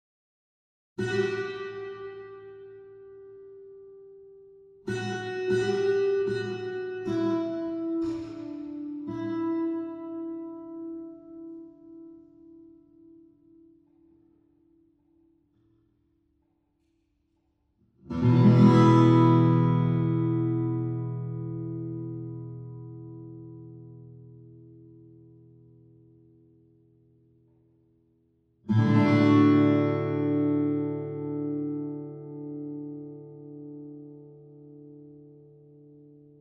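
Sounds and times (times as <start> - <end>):
stage guitar: 1.0 - 15.8, 18.0 - 36.4.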